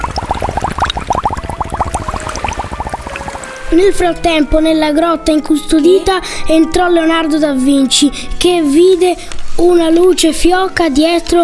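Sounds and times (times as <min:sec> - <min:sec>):
water pouring and splashing: 0:00.0 - 0:03.7
speech: 0:03.7 - 0:11.4.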